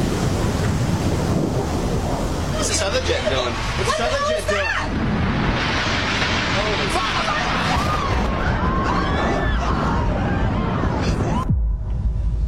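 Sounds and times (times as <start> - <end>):
deep rumbling roar of a building explosion: 0.0 - 12.4
heavy wind buffeting the microphone: 0.0 - 12.4
people shouting: 6.9 - 11.5.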